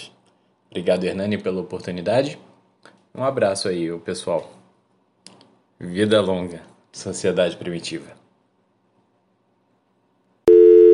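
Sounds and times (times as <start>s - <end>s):
speech: 0.7s - 2.5s, 3.1s - 4.6s, 5.8s - 8.2s
telephone busy signal while placing a call: 10.5s - 10.9s.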